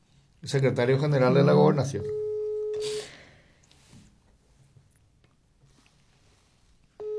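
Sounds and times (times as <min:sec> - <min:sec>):
speech: 0:00.4 - 0:03.0
telephone ringback tone on an outgoing call: 0:01.3 - 0:02.9, 0:07.0 - 0:07.1.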